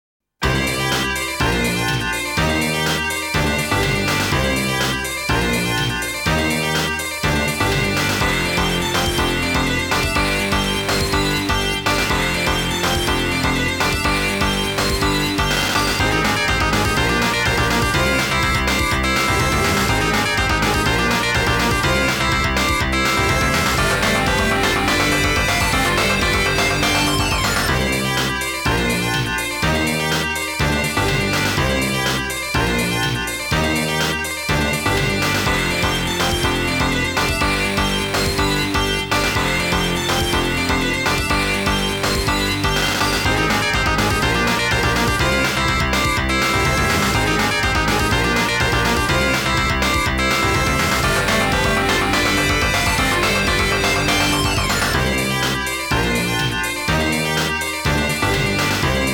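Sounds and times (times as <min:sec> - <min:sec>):
3D stage background game music: 0:00.4 - 0:59.1.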